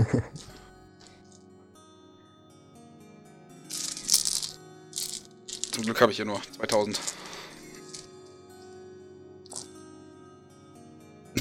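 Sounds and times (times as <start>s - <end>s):
laughter: 0.0s - 0.5s
speech: 0.1s - 0.5s, 5.8s - 7.2s
handful of dice clinking and rattling: 0.4s - 1.2s, 3.7s - 8.1s, 9.5s - 9.7s.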